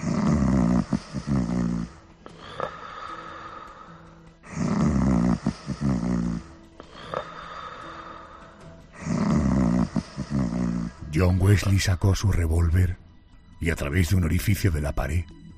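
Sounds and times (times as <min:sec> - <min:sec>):
quiet breathing: 0:00.0 - 0:04.8, 0:05.4 - 0:09.1
man snoring loudly: 0:00.0 - 0:11.3
speech: 0:11.2 - 0:13.0, 0:13.6 - 0:15.4.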